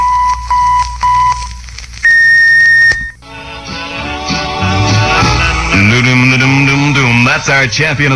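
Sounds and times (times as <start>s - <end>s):
radio station electronic time signal beeps: 0.0s - 3.2s
music playing: 3.2s - 7.7s
speech: 7.4s - 8.1s.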